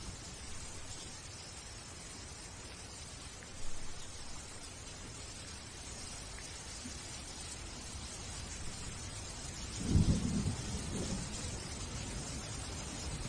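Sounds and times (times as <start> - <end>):
steady rain falling in a courtyard: 0.0 - 13.2
heavier low rumble, likely thunder: 9.6 - 13.2.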